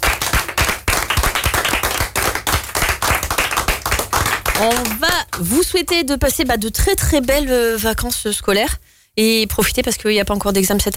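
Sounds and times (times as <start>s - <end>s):
audience applauding loudly: 0.0s - 5.6s
speech: 4.6s - 10.9s.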